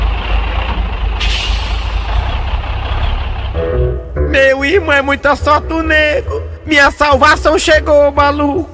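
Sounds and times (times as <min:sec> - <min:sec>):
heavy truck engine idling at a gas station: 0:00.0 - 0:08.4
heavy truck air brakes hissing: 0:01.2 - 0:02.5
speech: 0:04.7 - 0:08.7.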